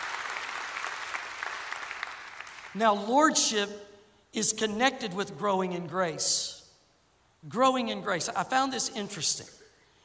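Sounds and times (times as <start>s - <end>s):
audience applause: 0.0s - 2.7s
speech: 2.8s - 6.6s, 7.4s - 9.6s.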